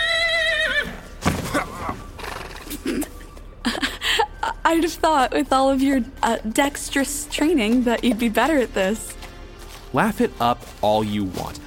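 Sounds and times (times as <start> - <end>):
horse neighing with a loud quavering whinny: 0.0 - 2.8
speech: 4.7 - 9.1, 9.9 - 11.6.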